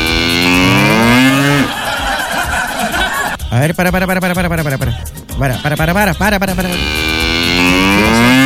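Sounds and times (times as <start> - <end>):
cow mooing before milking on a rainy day: 0.0 - 1.8, 6.7 - 8.4
laughter: 1.2 - 3.4
speech: 3.6 - 8.4.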